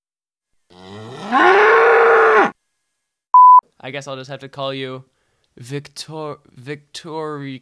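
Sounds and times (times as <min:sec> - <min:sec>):
voice imitating a cow mooing: 0:00.7 - 0:02.6
short electronic beep: 0:03.4 - 0:03.6
speech: 0:03.9 - 0:07.6.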